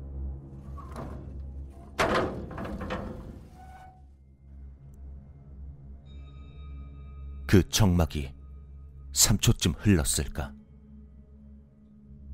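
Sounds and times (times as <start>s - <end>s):
quiet steady low hum: 0.0s - 5.3s
brief scraping rattle of a door: 0.6s - 4.1s
door flung wide open with a loud clunk: 0.6s - 4.1s
speech: 7.5s - 8.4s, 9.2s - 10.6s.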